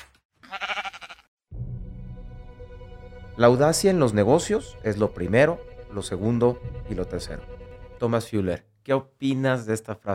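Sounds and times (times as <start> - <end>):
sheep bleating with a wavering quavering tone: 0.4 - 1.3
steady music: 1.5 - 8.2
speech: 3.4 - 10.1.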